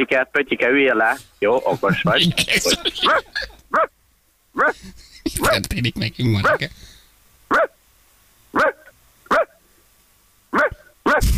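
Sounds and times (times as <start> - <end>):
speech: 0.0 - 3.9, 4.6 - 6.9
laughter: 1.4 - 3.7, 4.7 - 6.9
dog barking: 3.0 - 3.9, 4.6 - 4.8, 7.5 - 7.8, 8.6 - 9.6, 10.5 - 11.2.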